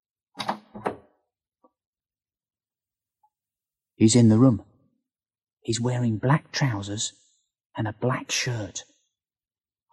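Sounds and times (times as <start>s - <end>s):
room door latch click: 0.4s - 1.1s
speech: 4.0s - 4.7s, 5.6s - 7.2s, 7.8s - 8.9s.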